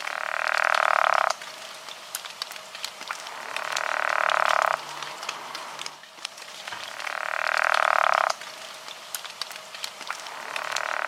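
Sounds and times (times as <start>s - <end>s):
pickerel frog calling with a rasping snore: 0.0s - 1.4s, 3.3s - 5.2s, 6.9s - 8.4s, 10.3s - 11.0s
faint crackly outdoor background: 0.0s - 11.0s.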